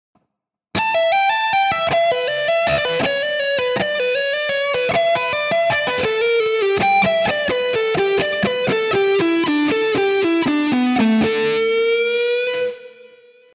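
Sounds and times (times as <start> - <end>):
hard rock speed lick on guitar: 0.8 - 13.4.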